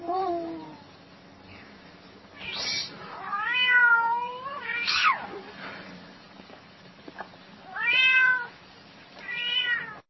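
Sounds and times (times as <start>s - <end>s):
cat meowing: 2.4s - 5.3s, 7.7s - 8.5s, 9.2s - 10.0s.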